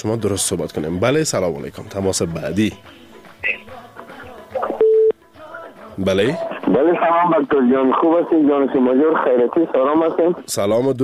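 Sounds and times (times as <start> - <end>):
speech: 0.0 - 3.6, 6.0 - 11.0
telephone busy tone after a dropped call: 4.7 - 5.2.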